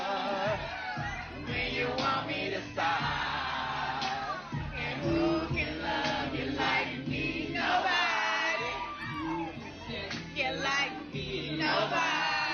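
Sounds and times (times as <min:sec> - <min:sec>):
large crowd singing together in unison: 0:00.0 - 0:12.5.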